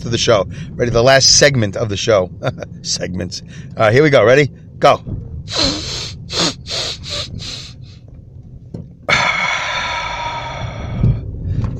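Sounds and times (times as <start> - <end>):
speech: 0.0 - 5.8
person breathing deeply: 5.5 - 8.0, 9.1 - 11.7.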